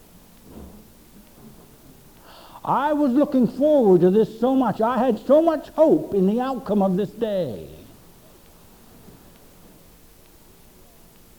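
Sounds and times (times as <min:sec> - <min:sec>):
steady rain hiss: 0:02.2 - 0:09.8
speech: 0:02.6 - 0:07.8.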